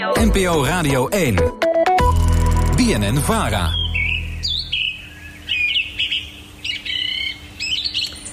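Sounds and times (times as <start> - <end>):
speech: 0.2 - 1.6, 2.8 - 3.9
song thrush singing in a birch: 3.5 - 8.3.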